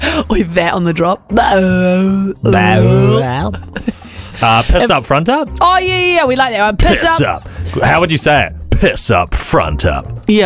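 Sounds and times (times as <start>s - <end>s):
speech: 0.2s - 10.4s
groan tube toy moaning: 1.4s - 3.5s.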